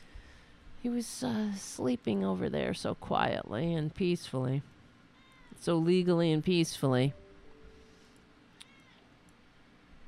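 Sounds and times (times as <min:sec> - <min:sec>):
speech: 0:00.8 - 0:04.8, 0:05.6 - 0:07.2
cat meowing: 0:08.6 - 0:09.1.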